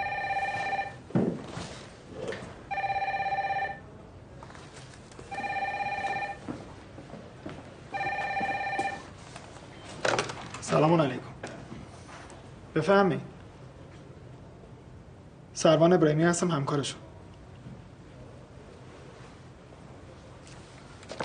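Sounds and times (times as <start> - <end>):
telephone ringing with electronic trill: 0.0 - 1.0, 2.7 - 3.9, 5.3 - 6.4, 7.9 - 9.2
speech: 10.8 - 11.3, 12.8 - 13.3, 15.6 - 17.0.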